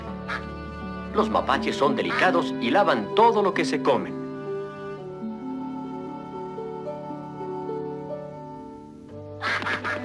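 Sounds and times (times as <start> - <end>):
ducks quacking: 0.0 - 0.8, 2.0 - 2.5, 9.4 - 10.0
sustained stepped instrumental melody: 0.0 - 10.0
speech: 1.2 - 4.2.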